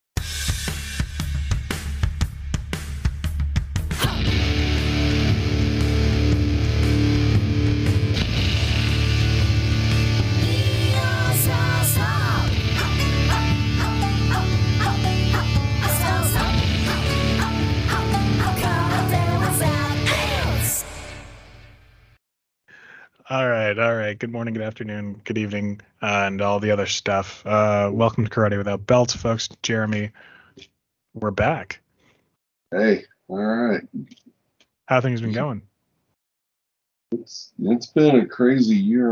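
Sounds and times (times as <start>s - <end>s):
loud intro music with heavy low end and rhythmic pulses: 0.2s - 22.0s
speech: 23.4s - 31.8s, 32.7s - 34.2s, 34.9s - 35.7s, 37.1s - 39.1s.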